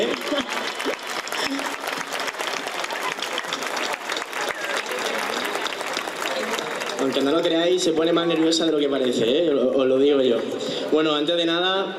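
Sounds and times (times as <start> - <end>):
audience applause: 0.0 - 9.4
speech: 7.2 - 11.9.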